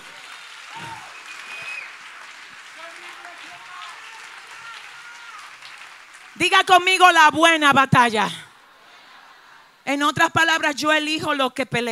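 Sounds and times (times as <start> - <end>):
faint voices and cheers: 0.0 - 6.0
audience clapping: 0.0 - 7.1
speech: 6.4 - 8.4, 9.9 - 11.8.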